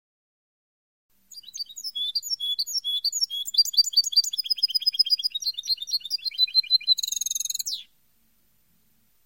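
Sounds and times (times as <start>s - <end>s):
European goldfinch song of tinkling twitter ending in a buzzy nasal burst: 1.3s - 7.9s.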